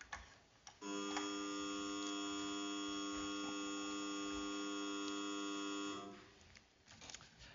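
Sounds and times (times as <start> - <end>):
steady electric assembly opening buzzer: 0.8 - 6.4.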